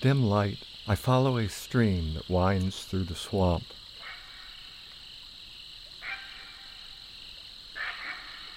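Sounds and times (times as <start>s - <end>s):
speech: 0.0s - 3.8s
high-pitched chorus of night insects or frogs: 0.0s - 8.5s
great blue heron croaking: 4.0s - 4.8s, 6.0s - 6.8s, 7.7s - 8.5s.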